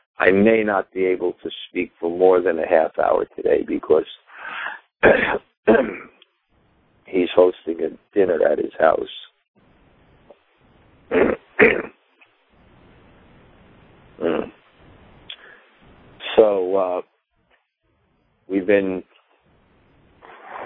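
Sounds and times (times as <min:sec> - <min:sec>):
speech: 0:00.2 - 0:06.2, 0:07.1 - 0:09.3, 0:11.1 - 0:11.9, 0:16.4 - 0:17.1, 0:18.5 - 0:19.1
person clearing throat in rough voiced bursts: 0:05.0 - 0:06.2, 0:11.1 - 0:12.0, 0:14.2 - 0:14.6
person coughing: 0:05.0 - 0:06.2, 0:11.1 - 0:12.0.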